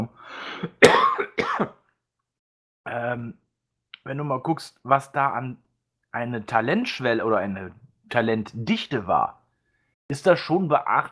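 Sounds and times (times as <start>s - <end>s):
rough throat-clearing coughs: 0.6s - 1.8s
speech: 3.0s - 3.4s, 4.0s - 9.4s, 10.1s - 11.0s.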